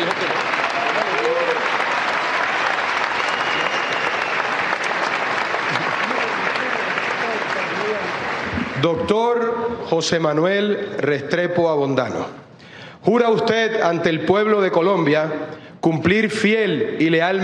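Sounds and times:
large crowd applauding: 0:00.0 - 0:09.2
speech: 0:08.8 - 0:12.4, 0:13.0 - 0:17.4.

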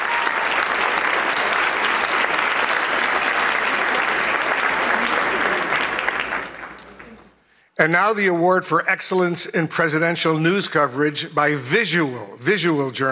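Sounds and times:
large audience applauding: 0:00.0 - 0:07.4
speech: 0:07.8 - 0:13.1.

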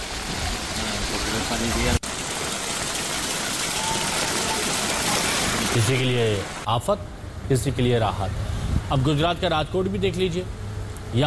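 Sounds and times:
heavy rain: 0:00.0 - 0:06.7
rushing floodwater: 0:00.0 - 0:06.7
speech: 0:01.5 - 0:02.0, 0:05.8 - 0:11.2.

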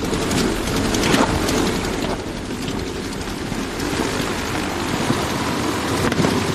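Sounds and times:
rough-running engine roaring: 0:00.0 - 0:06.5.

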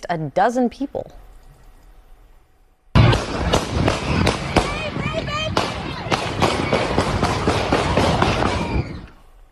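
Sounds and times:
speech: 0:00.1 - 0:01.2
gunshots fired near a neighborhood festival: 0:03.0 - 0:09.1
people shouting: 0:03.0 - 0:09.2
noisy crowd at a neighborhood festival: 0:03.0 - 0:09.3.

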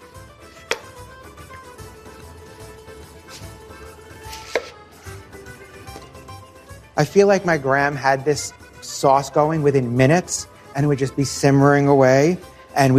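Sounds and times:
knife chopping a sweet onion on a board: 0:00.6 - 0:01.0, 0:04.3 - 0:04.8
speech: 0:07.0 - 0:12.9.

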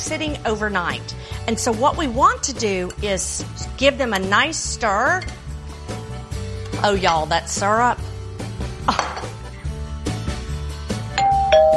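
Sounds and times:
speech: 0:00.0 - 0:05.4, 0:06.8 - 0:08.1
music: 0:00.0 - 0:11.7
faint kitchen clatter: 0:08.9 - 0:09.4
doorbell ringing with a two-tone chime: 0:11.2 - 0:11.7.

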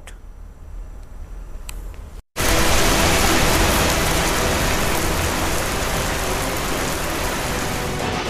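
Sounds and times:
giant hailstones hammering a road and parked cars: 0:02.4 - 0:08.1.

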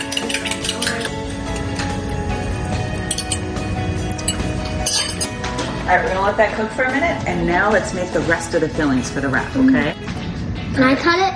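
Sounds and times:
utensils clinking against dishes while making scrambled eggs: 0:00.0 - 0:05.8
speech: 0:05.9 - 0:10.1, 0:10.8 - 0:11.3.

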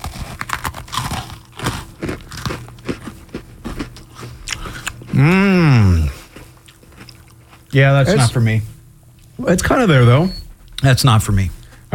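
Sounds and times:
person chewing chicken and waffles with mouth open: 0:00.0 - 0:08.3
speech: 0:05.2 - 0:05.9, 0:07.8 - 0:08.7, 0:09.4 - 0:11.6.

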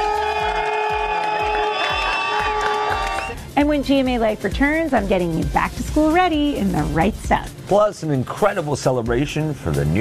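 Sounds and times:
large crowd cheering and whooping: 0:00.0 - 0:03.4
speech: 0:03.6 - 0:09.9.

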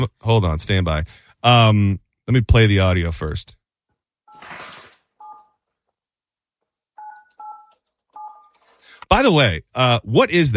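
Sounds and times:
speech: 0:00.0 - 0:03.6, 0:09.1 - 0:10.5
toy phone beeping with two-tone button presses: 0:05.2 - 0:05.6, 0:07.0 - 0:08.7.

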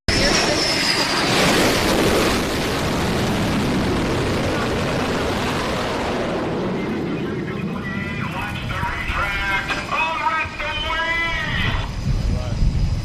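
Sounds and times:
F-18 fighter jet landing on an aircraft carrier near the Strait of Hormuz: 0:00.1 - 0:13.0.

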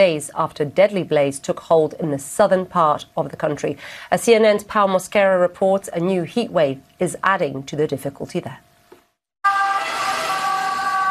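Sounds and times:
speech: 0:00.0 - 0:08.7
emergency vehicle siren wailing: 0:09.4 - 0:11.0.

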